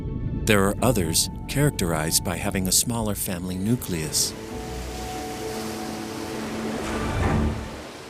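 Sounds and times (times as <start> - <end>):
speech: 0.5 - 4.6
low sustained hum: 4.0 - 8.0
ocean waves surging against a rocky cliff in the South Pacific coastal zone: 4.3 - 8.0.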